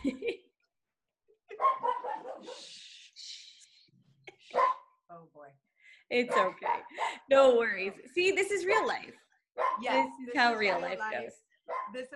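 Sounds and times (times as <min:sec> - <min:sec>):
dog barking and yelping: 0:01.6 - 0:02.6, 0:04.5 - 0:04.9, 0:06.3 - 0:06.9, 0:09.6 - 0:10.0, 0:11.7 - 0:12.0
speech: 0:06.1 - 0:09.2, 0:09.8 - 0:12.1.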